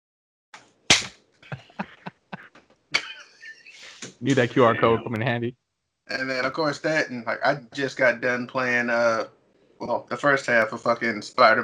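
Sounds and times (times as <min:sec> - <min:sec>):
sharp loud slap on a bald head: 0:00.9 - 0:01.2
laughter: 0:01.5 - 0:05.2, 0:06.1 - 0:09.2
speech: 0:04.2 - 0:11.6.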